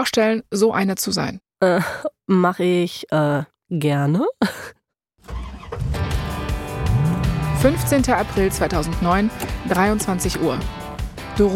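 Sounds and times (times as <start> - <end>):
speech: 0.0 - 5.4, 7.6 - 10.8, 11.4 - 11.5
small car engine accelerating with four passengers: 5.2 - 8.8.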